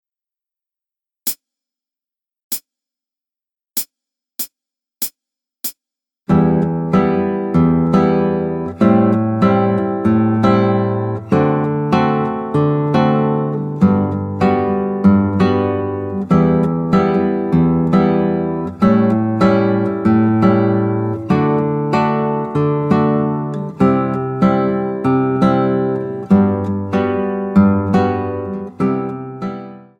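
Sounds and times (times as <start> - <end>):
guitar accompaniment: 6.3 - 29.9.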